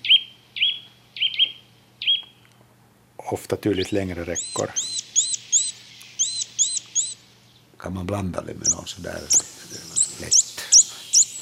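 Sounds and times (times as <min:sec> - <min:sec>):
bird singing clear high whistled notes: 0:00.0 - 0:02.4, 0:03.7 - 0:07.6, 0:08.6 - 0:11.4
speech: 0:03.3 - 0:05.0, 0:07.8 - 0:10.5.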